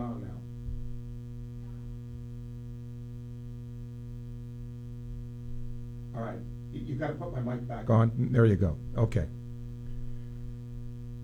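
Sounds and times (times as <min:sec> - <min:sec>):
loud steady electrical mains hum on broadcast audio: 0:00.0 - 0:11.2
speech: 0:06.2 - 0:09.4.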